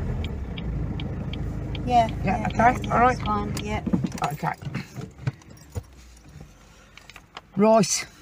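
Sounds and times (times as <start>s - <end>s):
car engine rumble winding down and stopping outside a graveyard: 0.0s - 8.2s
speech: 1.8s - 4.9s, 7.6s - 8.1s
keys jangling: 4.1s - 6.4s.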